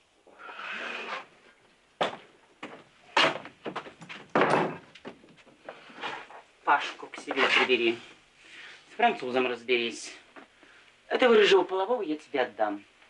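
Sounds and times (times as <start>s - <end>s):
door scraping open with a sliding rasp: 0.4s - 1.3s
door banging and rattling against its frame: 3.2s - 5.2s
speech: 6.7s - 8.1s, 9.0s - 10.2s, 11.2s - 12.9s.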